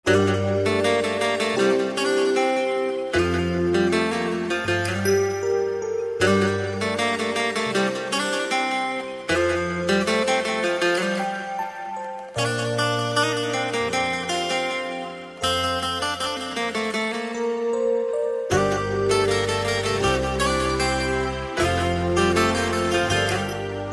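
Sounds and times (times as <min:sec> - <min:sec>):
guitar ringtone: 0:00.1 - 0:23.9.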